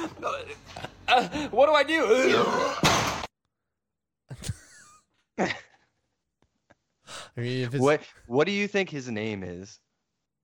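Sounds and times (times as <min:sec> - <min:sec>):
speech: 0:00.1 - 0:03.1, 0:05.4 - 0:05.7, 0:07.4 - 0:09.8
loud rough burp and gurgling belch: 0:02.3 - 0:03.0
laughter: 0:04.3 - 0:06.0.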